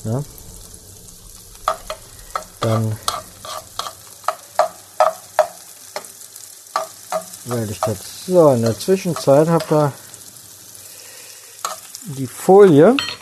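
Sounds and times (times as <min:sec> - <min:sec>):
speech: 0:00.0 - 0:00.4, 0:02.6 - 0:03.1, 0:07.5 - 0:10.0, 0:12.1 - 0:13.1
food sizzling in a frying pan: 0:00.0 - 0:13.1
spatula scraping and stirring food in a frying pan: 0:01.6 - 0:10.0, 0:11.6 - 0:12.0.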